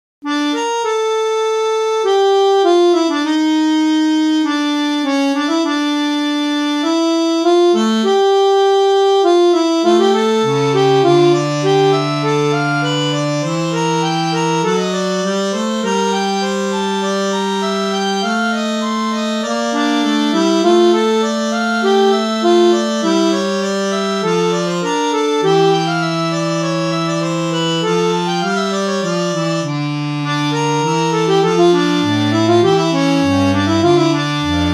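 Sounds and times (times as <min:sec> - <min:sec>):
MicrOrgan closed reeds: 0:00.3 - 0:34.7.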